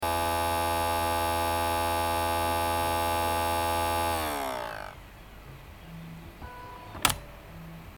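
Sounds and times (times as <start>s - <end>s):
badly fixed computer CD recorder ending a copy: 0.0s - 5.0s, 7.0s - 7.2s.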